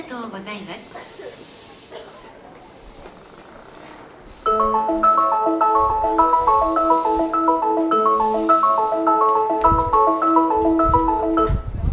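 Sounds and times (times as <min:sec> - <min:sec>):
Harajuku train station melody in Tokyo: 0:04.4 - 0:11.8.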